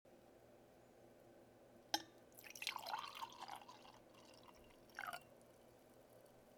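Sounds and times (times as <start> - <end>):
wine glass being filled: 2.4 - 5.4.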